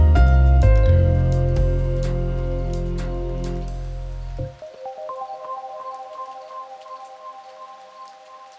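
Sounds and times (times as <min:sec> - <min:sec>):
synth pad: 0:00.0 - 0:06.3.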